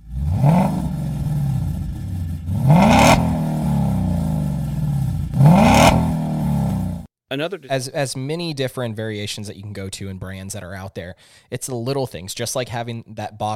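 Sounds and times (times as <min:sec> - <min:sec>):
car engine revving through a straight-pipe exhaust with no muffler: 0:00.0 - 0:07.1
speech: 0:07.3 - 0:13.5.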